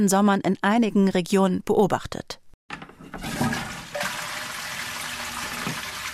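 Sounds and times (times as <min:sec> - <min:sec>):
speech: 0:00.0 - 0:02.4
toilet flushing with drinking water: 0:03.1 - 0:06.1.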